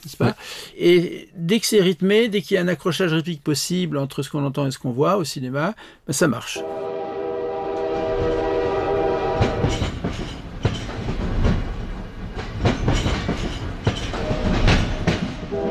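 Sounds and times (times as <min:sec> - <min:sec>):
speech: 0:00.0 - 0:06.9
sustained horn-like tone: 0:06.6 - 0:09.8, 0:14.2 - 0:15.6
train passing with rumble and wheel clatter: 0:06.6 - 0:15.6.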